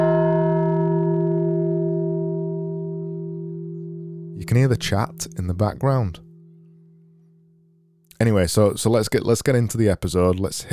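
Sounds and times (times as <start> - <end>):
sad-sounding dong sound effect like a struck bell: 0.0 - 7.8
speech: 4.4 - 6.3, 8.2 - 10.7.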